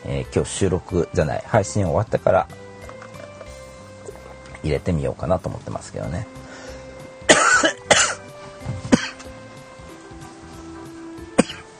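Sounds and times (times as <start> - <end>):
speech: 0.1 - 2.6, 4.6 - 6.4
person with a scratchy throat coughing: 7.3 - 8.2, 8.8 - 9.3, 11.4 - 11.7.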